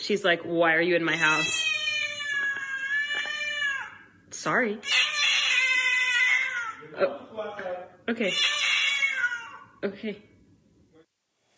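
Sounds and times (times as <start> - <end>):
speech: 0.0 - 1.7, 4.4 - 5.0, 6.9 - 8.6, 9.8 - 10.3
cat giving a long drawn-out meow: 1.1 - 4.0, 4.8 - 6.8, 8.2 - 9.7.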